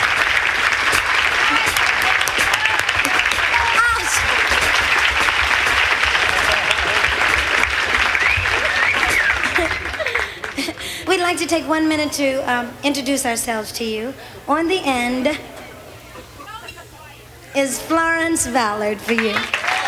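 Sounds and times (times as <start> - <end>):
audience applause for a conductor and orchestra: 0.0 - 11.2, 19.0 - 19.8
laughter: 0.0 - 12.2, 14.2 - 17.5
people cheering: 0.0 - 12.8, 15.3 - 19.8
murmuring voices: 0.0 - 19.8
speech: 11.5 - 15.5, 17.6 - 19.6.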